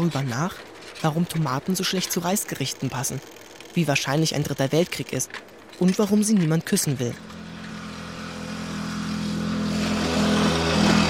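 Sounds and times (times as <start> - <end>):
speech: 0.0 - 7.4
faint broadband road noise: 0.0 - 11.0
moped engine passing on a country road: 7.0 - 11.0.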